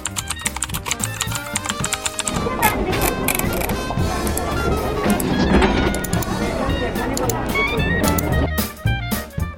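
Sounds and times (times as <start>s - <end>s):
goods clattering and knocking at a street market: 0.5s - 8.5s
overlapping voices at a busy street market: 2.0s - 8.5s.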